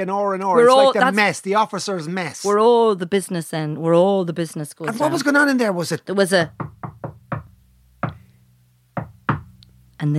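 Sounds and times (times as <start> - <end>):
speech: 0.0 - 6.7
coded knocks on a wooden door: 6.5 - 8.2, 9.0 - 9.6.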